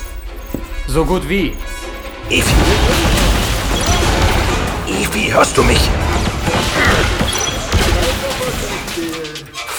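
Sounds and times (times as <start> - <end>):
speech: 0.9 - 3.3, 4.9 - 7.0
dense continuous gunfire: 2.3 - 9.1.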